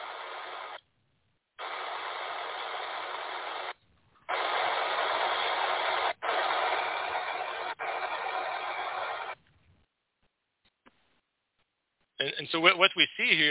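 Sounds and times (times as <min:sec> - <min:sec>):
broadband radio static hiss: 0:00.0 - 0:00.8, 0:01.6 - 0:09.4
speech: 0:12.3 - 0:13.5.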